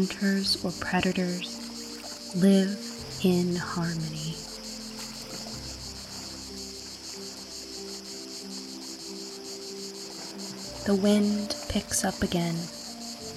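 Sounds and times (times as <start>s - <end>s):
speech: 0.0s - 1.6s, 2.3s - 4.4s, 10.9s - 12.8s
cicadas buzzing high in trees: 0.0s - 13.3s.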